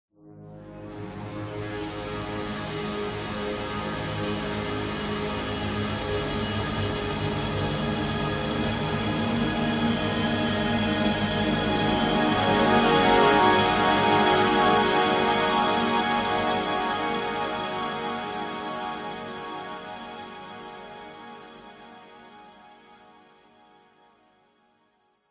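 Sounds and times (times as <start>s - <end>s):
strings: 0.9s - 22.6s
cinematic orchestral tension drone: 2.9s - 21.6s.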